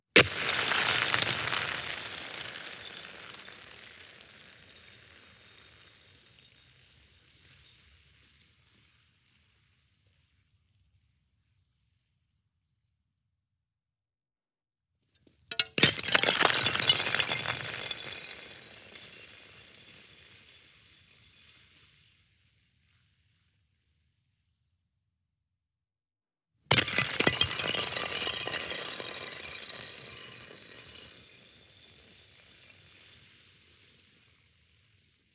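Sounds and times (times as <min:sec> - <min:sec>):
ice dropping and shattering outdoors: 0:00.2 - 0:05.6, 0:15.5 - 0:19.6, 0:26.7 - 0:31.1.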